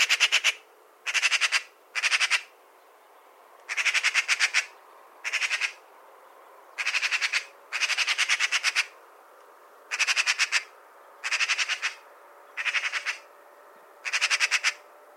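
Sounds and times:
Eurasian magpie Pica pica chattering: 0:00.0 - 0:02.5, 0:03.7 - 0:05.8, 0:06.8 - 0:08.9, 0:09.9 - 0:12.0, 0:12.6 - 0:13.2, 0:14.0 - 0:14.8.

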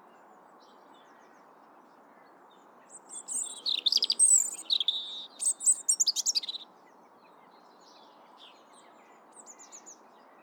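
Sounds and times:
European robin Erithacus rubecula singing: 0:03.0 - 0:06.6.

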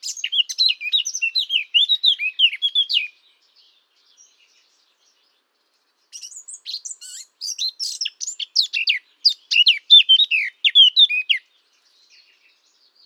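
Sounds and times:
Eurasian Blackcap singing, Sylvia atricapilla: 0:00.0 - 0:03.2, 0:06.1 - 0:13.0.

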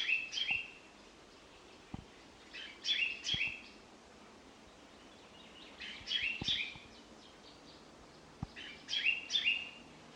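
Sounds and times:
common chaffinch Fringilla coelebs calls: 0:00.0 - 0:00.8, 0:02.4 - 0:03.8, 0:04.7 - 0:07.8, 0:08.4 - 0:09.8.

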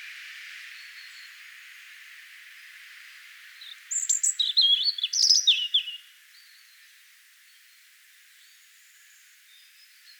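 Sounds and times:
European robin (Erithacus rubecula) singing: 0:03.9 - 0:06.1.

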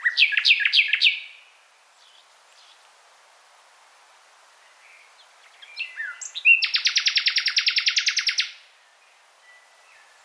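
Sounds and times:
common nightingale Luscinia megarhynchos singing: 0:00.0 - 0:02.8, 0:04.6 - 0:10.2.

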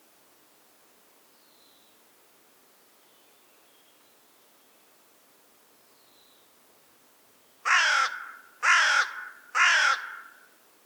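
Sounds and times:
Carrion crow Corvus corone cawing: 0:07.6 - 0:10.5.

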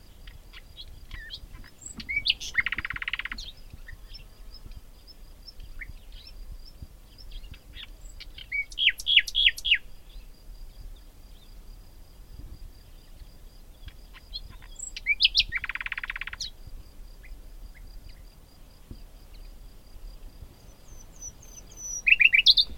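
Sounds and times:
Common nightingale song with buzzy rattle and whistled notes: 0:00.0 - 0:11.6, 0:12.8 - 0:16.6, 0:20.6 - 0:22.7.

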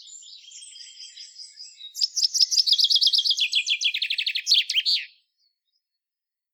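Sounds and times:
Fringilla coelebs common chaffinch song: 0:00.0 - 0:06.0.

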